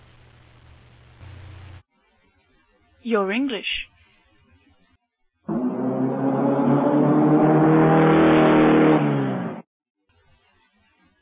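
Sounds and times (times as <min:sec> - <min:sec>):
speech: 0:03.0 - 0:03.9
car engine revving: 0:05.5 - 0:09.6.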